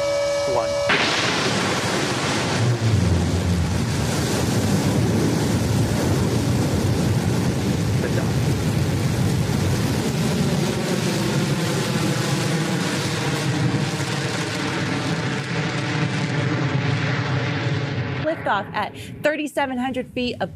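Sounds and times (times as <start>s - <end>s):
BE-3 rocket engine roar during launch: 0.0s - 20.5s
speech: 0.5s - 1.6s, 18.6s - 20.5s.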